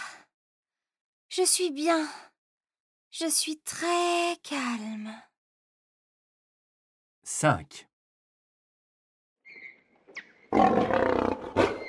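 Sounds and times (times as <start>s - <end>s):
speech: 1.4s - 2.3s, 3.1s - 5.3s, 7.3s - 7.9s, 10.5s - 11.0s
lion roaring: 10.5s - 11.8s.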